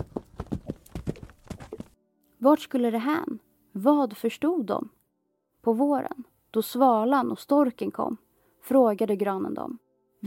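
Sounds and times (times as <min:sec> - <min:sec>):
horse hooves clip-clopping while pulling wagons loaded with felled trees: 0:00.0 - 0:02.0
speech: 0:02.4 - 0:05.0, 0:05.6 - 0:10.2.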